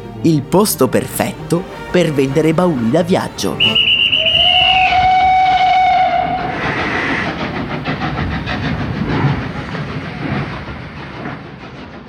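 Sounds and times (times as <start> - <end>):
steam train rumbling past with rhythmic chugging: 0.0 - 12.0
speech: 0.2 - 3.9
loud steam train whistle blowing: 3.5 - 7.3
steam train wheels clattering: 3.8 - 12.0.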